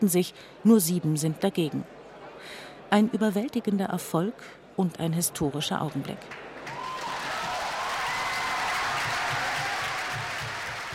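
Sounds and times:
speech: 0.0s - 6.4s
large crowd of delegates applauding in Rome after a vote: 6.3s - 10.9s.

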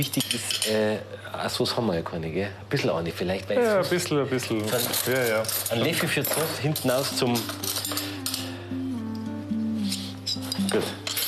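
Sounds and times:
metal cutlery clinking as a table is set: 0.0s - 0.8s, 4.6s - 8.5s, 9.8s - 11.2s
speech: 0.0s - 8.0s
steady low electrical hum: 0.0s - 11.2s.

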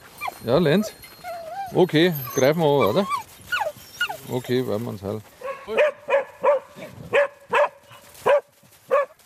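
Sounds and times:
speech: 0.4s - 1.1s, 1.7s - 3.2s, 4.3s - 5.8s
hunting dogs barking: 5.4s - 9.1s.

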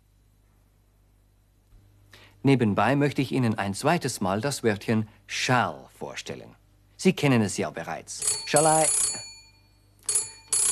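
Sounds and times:
speech: 2.4s - 9.3s
telephone bell ringing: 8.2s - 10.7s.

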